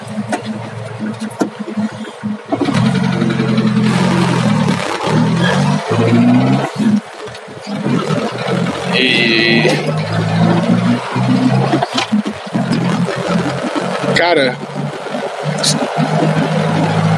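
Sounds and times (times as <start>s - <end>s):
car engine starting and running: 0.0s - 17.1s
speech: 1.0s - 1.5s, 14.2s - 14.7s, 15.6s - 16.1s.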